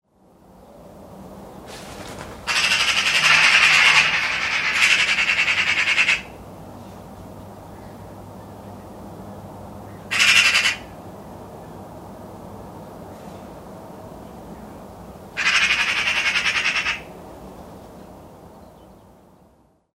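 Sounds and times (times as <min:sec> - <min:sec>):
magpie calling: 0:01.7 - 0:06.4, 0:10.1 - 0:11.0, 0:15.4 - 0:17.2.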